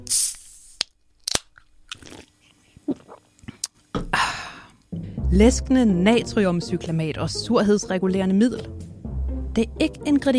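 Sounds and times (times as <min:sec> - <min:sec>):
speech: 0:00.1 - 0:00.4, 0:05.3 - 0:08.8, 0:09.6 - 0:10.3
soft swallowing and mouth noises: 0:01.8 - 0:03.8
person slurping fizzy diet soda: 0:02.0 - 0:03.3.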